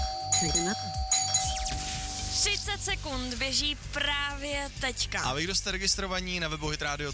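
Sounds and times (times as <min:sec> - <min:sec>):
doorbell melodic chime: 0:00.0 - 0:01.7
speech: 0:00.4 - 0:01.1, 0:02.4 - 0:07.1.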